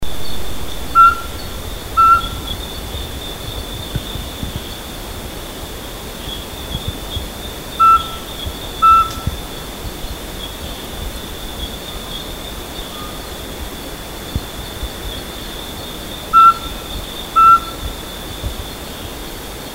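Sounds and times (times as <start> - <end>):
steady high insect drone on Mount Kinabalu: 0.1 - 19.7
mountain scops owl giving clear whistled notes on Mount Kinabalu: 0.9 - 4.5, 7.8 - 9.4, 16.3 - 17.9.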